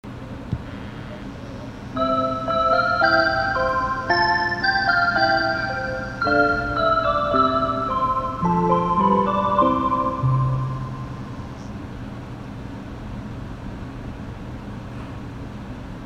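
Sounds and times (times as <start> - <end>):
chime: 2.0 - 11.6.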